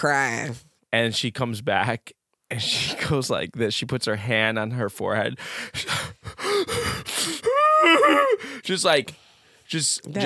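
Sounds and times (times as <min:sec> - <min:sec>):
speech: 0:00.0 - 0:10.2
person imitating heavy panicked breathing: 0:05.4 - 0:08.6.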